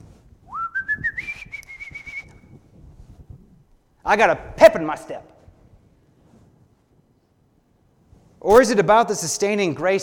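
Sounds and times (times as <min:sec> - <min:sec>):
person cheerfully whistling a tune: 0:00.5 - 0:02.5
speech: 0:04.1 - 0:05.3, 0:08.4 - 0:10.0.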